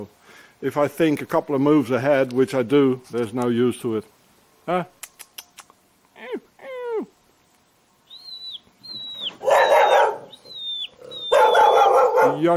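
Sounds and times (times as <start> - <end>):
speech: 0.0 - 5.0, 12.4 - 12.5
young dogs barking and yipping: 8.3 - 12.5.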